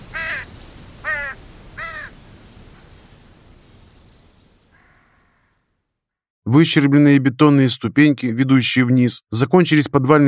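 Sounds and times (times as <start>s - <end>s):
flock of crows cawing while circling overhead: 0.1s - 2.2s, 4.7s - 5.7s
speech: 6.5s - 10.2s.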